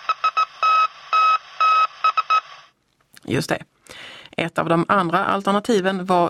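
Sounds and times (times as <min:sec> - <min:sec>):
Morse code SOS signal in electronic beeps: 0:00.0 - 0:02.5
speech: 0:03.3 - 0:06.2.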